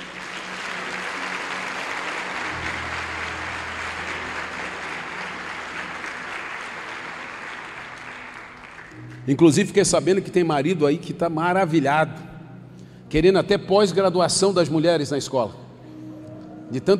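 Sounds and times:
sustained applause from a large crowd: 0.0s - 9.2s
speech: 9.3s - 12.3s, 13.1s - 15.6s, 16.7s - 16.9s.

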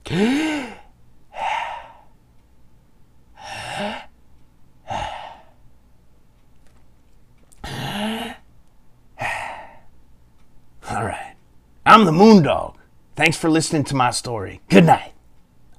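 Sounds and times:
deep breaths taken together: 0.0s - 2.2s, 3.4s - 4.2s, 4.8s - 5.6s, 9.2s - 9.9s
speech: 0.1s - 0.5s, 12.0s - 15.1s.

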